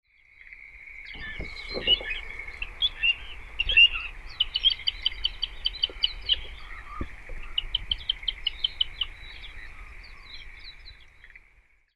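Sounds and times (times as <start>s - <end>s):
Little Ringed Plover calling in Toyooka: 1.1s - 11.4s.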